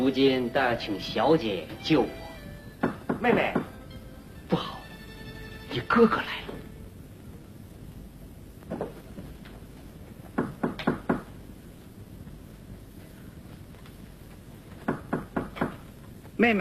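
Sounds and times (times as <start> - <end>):
steady hiss: 0.0 - 16.5
speech: 0.1 - 3.7, 4.5 - 4.8, 5.7 - 6.6, 16.4 - 16.5
knocking on a door: 2.8 - 3.8, 10.3 - 11.3, 14.8 - 15.8.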